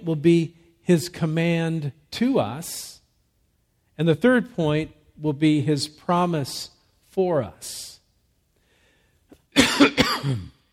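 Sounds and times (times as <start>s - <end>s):
speech: 0.0s - 3.0s, 4.0s - 8.0s, 9.6s - 10.6s
person coughing harshly: 9.6s - 10.7s.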